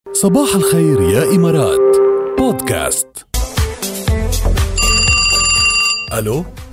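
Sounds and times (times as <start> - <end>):
speech: 0.1 - 3.3, 6.1 - 6.6
telephone ringing with a shrill electronic trill during a radio call-in: 4.8 - 6.2.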